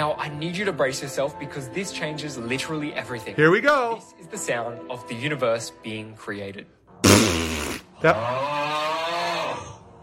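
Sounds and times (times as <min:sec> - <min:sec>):
speech: 0:00.0 - 0:07.4, 0:08.0 - 0:08.8
voice imitating a fart: 0:07.0 - 0:09.5.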